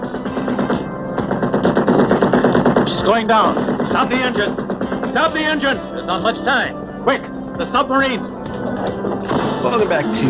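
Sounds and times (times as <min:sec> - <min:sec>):
rapid gunfire: 0:00.0 - 0:06.3
speech: 0:03.1 - 0:04.6, 0:05.2 - 0:10.2.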